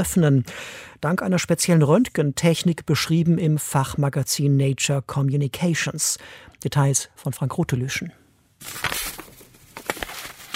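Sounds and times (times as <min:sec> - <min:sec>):
speech: 0:00.0 - 0:09.0
letter paper crinkling as it is folded and slipped into an envelope: 0:08.6 - 0:10.5.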